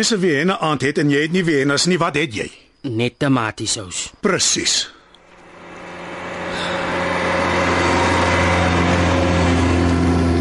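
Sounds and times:
speech: 0.0 - 5.0
Golf 5 GTI car engine driving past: 5.2 - 10.3.

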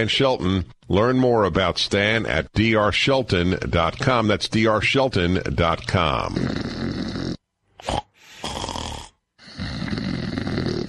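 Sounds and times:
speech: 0.0 - 6.9, 7.8 - 8.6
loud raspy snoring in long rattling breaths: 6.0 - 10.8.

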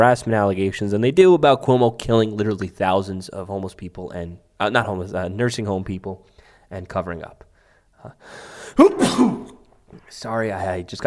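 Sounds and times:
speech: 0.0 - 11.0
person sneezing: 8.5 - 9.7.

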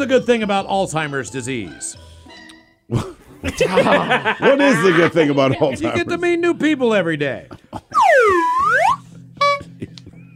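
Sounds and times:
speech: 0.0 - 2.2, 2.9 - 7.8
laughter: 2.9 - 6.3, 7.4 - 8.0, 9.6 - 10.3
cartoonish swooping tone: 7.9 - 9.7
comedic horn honk: 8.0 - 9.8.

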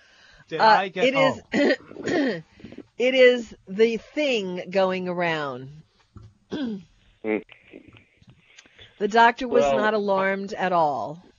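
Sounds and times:
speech: 0.5 - 5.8, 6.5 - 7.6, 9.0 - 11.3
man coughing in rough raspy bursts: 1.0 - 2.3
man clearing throat: 1.1 - 1.4.

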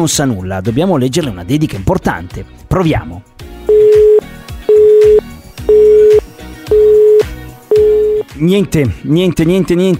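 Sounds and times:
speech: 0.0 - 4.1, 8.4 - 9.9
low music: 0.0 - 9.9
telephone busy signal on an unanswered call: 3.7 - 8.2.

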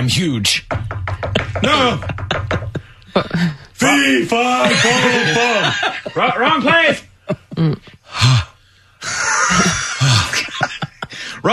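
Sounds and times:
speech: 0.0 - 2.6, 3.2 - 8.4
laughter: 1.3 - 8.4, 9.0 - 11.5
person panting and gasping after climbing steps: 2.7 - 3.8, 7.5 - 10.4, 11.0 - 11.4.

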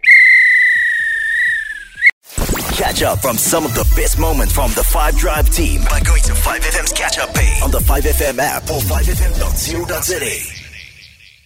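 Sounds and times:
referee's whistle blown to end play: 0.0 - 2.1
speech: 2.9 - 10.6.

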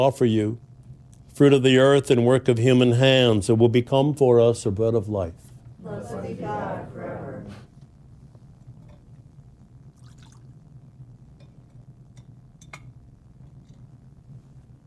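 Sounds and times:
speech: 0.0 - 0.6, 1.4 - 7.1
steady low room hum: 0.0 - 14.8
water poured into a chalice of wine: 10.0 - 10.5.

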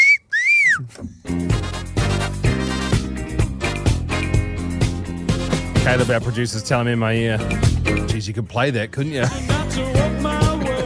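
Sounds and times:
bright swooping whistles: 0.0 - 1.0
loud dense mashup music track with heavy bass and layered instruments: 1.2 - 8.2, 9.0 - 10.8
speech: 5.9 - 10.0.

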